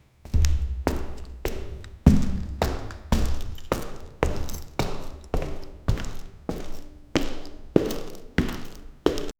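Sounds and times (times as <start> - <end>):
slow heavy footsteps in a hall: 0.2 - 9.3.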